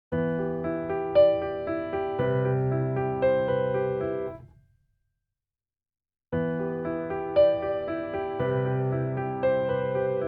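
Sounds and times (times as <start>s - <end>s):
subtle piano with space: 0.1s - 4.7s, 6.3s - 10.2s.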